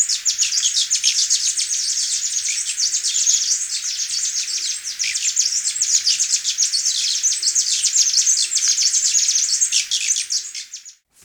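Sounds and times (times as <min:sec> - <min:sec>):
Tyrian metaltail buzzy twitter in Ecuador: 0:00.0 - 0:11.0.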